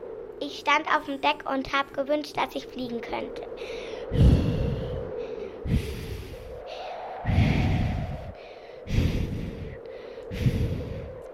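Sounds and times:
speech: 0.5s - 4.3s
voice imitating strong wind on a ferry deck: 2.6s - 11.2s.

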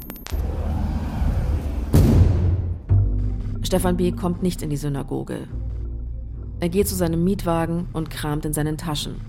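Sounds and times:
homemade explosive device detonating at a door: 0.3s - 3.0s
speech: 3.7s - 5.7s, 6.6s - 9.2s.

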